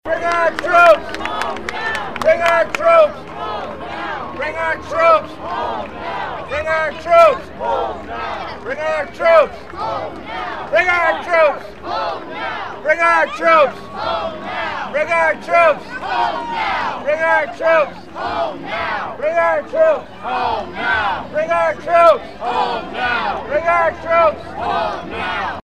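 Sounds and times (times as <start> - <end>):
applause: 0.1 - 6.0, 7.4 - 12.0
people chanting: 0.1 - 25.6.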